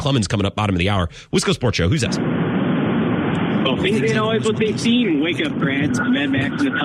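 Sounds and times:
speech: 0:00.0 - 0:02.4, 0:03.6 - 0:06.8
low car engine drone heard through a phone line: 0:02.2 - 0:06.8.

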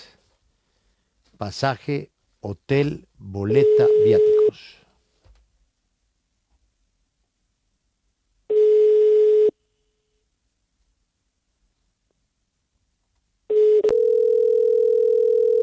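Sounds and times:
speech: 0:01.4 - 0:04.8
telephone ringing tone of an unanswered outgoing call: 0:03.6 - 0:04.6, 0:08.5 - 0:09.5, 0:13.5 - 0:15.6.

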